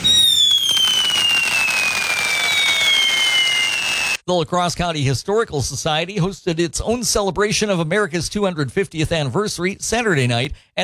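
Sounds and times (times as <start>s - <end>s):
fireworks crackling, fizzing and popping: 0.0s - 4.2s
speech: 4.3s - 10.8s.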